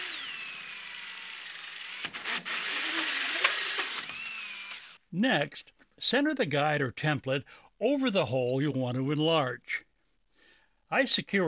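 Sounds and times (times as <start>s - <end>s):
hole saw in a drill boring into scrap wood: 0.0s - 5.0s
speech: 5.1s - 9.9s, 10.9s - 11.4s.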